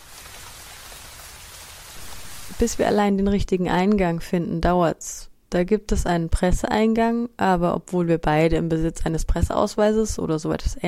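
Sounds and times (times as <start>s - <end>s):
steady rain falling in a courtyard: 0.0s - 3.0s
speech: 2.5s - 10.8s.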